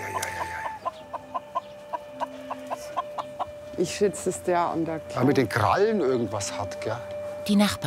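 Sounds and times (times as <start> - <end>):
injured limping chicken clucking: 0.0 - 3.6
speech: 3.8 - 7.8.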